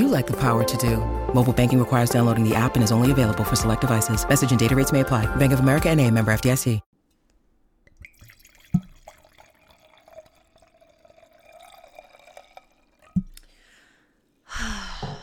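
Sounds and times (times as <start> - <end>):
speech: 0.0 - 6.9
glass clinking: 7.8 - 13.6
sugar-free zero-carb drink being poured into a glass: 7.9 - 13.6
breathy noise: 13.4 - 15.2.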